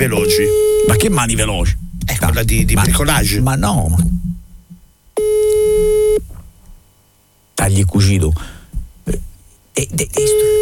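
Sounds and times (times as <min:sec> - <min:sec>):
telephone busy signal after placing a call: 0:00.0 - 0:01.2, 0:05.2 - 0:06.2, 0:10.2 - 0:10.6
speech: 0:00.0 - 0:04.2, 0:07.7 - 0:10.6.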